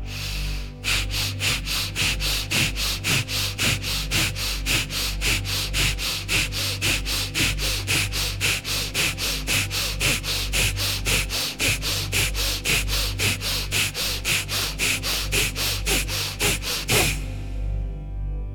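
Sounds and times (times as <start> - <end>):
rapid rhythmic nasal breathing: 0.0 - 17.9.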